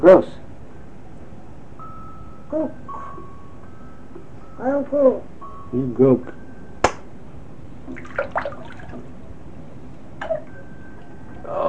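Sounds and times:
speech: 0:00.0 - 0:00.4, 0:02.5 - 0:02.8, 0:04.6 - 0:06.4
soapy water splashing in a bathtub as someone bathes: 0:07.9 - 0:09.1.

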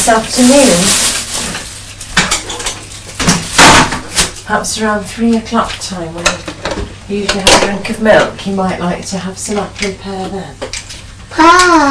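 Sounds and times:
speech: 0:00.0 - 0:01.2, 0:04.5 - 0:11.8
cutlery and dishes clattering as apple and pear are moved into a lidded pot: 0:02.2 - 0:04.0.

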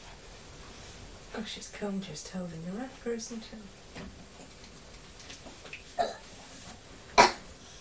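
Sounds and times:
speech: 0:01.4 - 0:04.2
short dry coughs: 0:06.0 - 0:06.3, 0:07.2 - 0:07.5.

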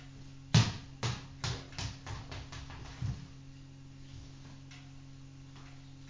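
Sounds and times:
low steady hum: 0:00.0 - 0:06.0
ball bouncing: 0:00.5 - 0:03.3.

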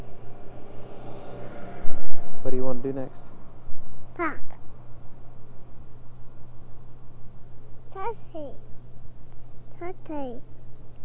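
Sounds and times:
broad road noise: 0:00.0 - 0:05.9
car passing with low engine rumble: 0:00.0 - 0:05.9
speech: 0:02.4 - 0:03.4, 0:04.2 - 0:04.5, 0:08.0 - 0:08.7, 0:09.8 - 0:10.5.

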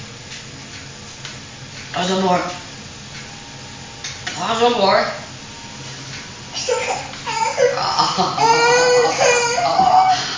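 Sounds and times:
speech: 0:02.0 - 0:02.6, 0:04.4 - 0:05.2, 0:07.8 - 0:09.2
young child crying in wailing sobbing bursts: 0:06.6 - 0:10.3.

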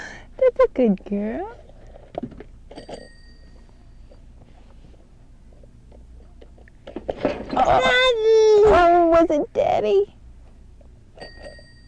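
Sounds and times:
soft hum: 0:00.0 - 0:11.8
speech: 0:00.6 - 0:01.6, 0:07.7 - 0:10.2
telephone ringing: 0:02.7 - 0:03.8, 0:11.2 - 0:11.8.

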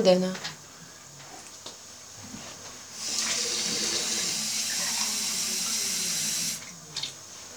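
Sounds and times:
speech: 0:00.0 - 0:00.5
tap water running into a glass: 0:03.0 - 0:06.7.

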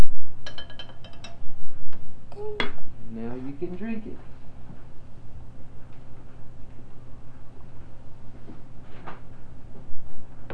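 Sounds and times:
low steady hum: 0:00.0 - 0:10.5
spoon stirring milk in a glass: 0:00.4 - 0:01.5
speech: 0:03.6 - 0:04.4.

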